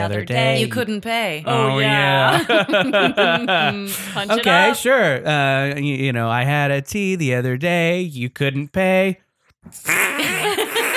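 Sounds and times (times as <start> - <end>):
speech: 0.0 - 10.4
laughter: 1.5 - 4.8, 10.2 - 10.9
wet buzzing fart noise blown with the mouth and a hand: 9.7 - 10.9.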